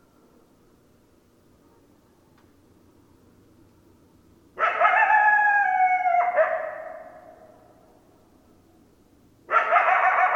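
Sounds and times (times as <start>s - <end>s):
coyote howl: 4.6s - 7.6s, 9.5s - 10.3s.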